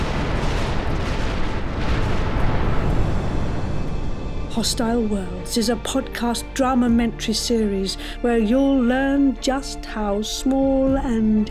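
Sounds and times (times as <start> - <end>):
heavy continuous roaring rumble standing in for an exploding star: 0.0 - 6.1
speech: 4.6 - 11.4.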